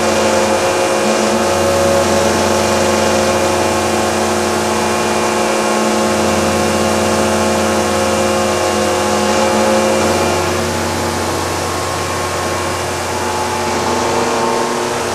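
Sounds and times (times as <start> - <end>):
static above a dome: 0.0 - 15.1.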